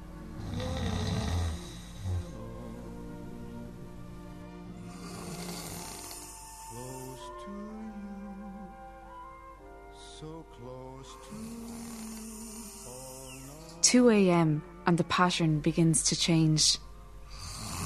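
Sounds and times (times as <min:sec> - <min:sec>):
man snoring loudly in his sleep: 0:00.4 - 0:03.0, 0:04.9 - 0:07.4, 0:11.1 - 0:13.8, 0:17.3 - 0:17.8
speech: 0:13.9 - 0:16.9.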